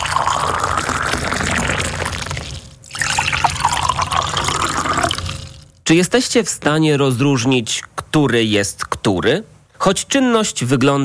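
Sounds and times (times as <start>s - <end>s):
boiling and cold water pouring into mugs: 0.0s - 5.7s
speech: 5.9s - 11.0s.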